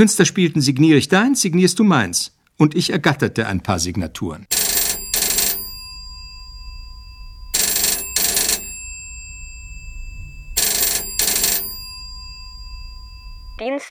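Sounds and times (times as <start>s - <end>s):
speech: 0.0s - 4.6s
telephone double ring with a buzzing metallic tone: 4.5s - 13.6s.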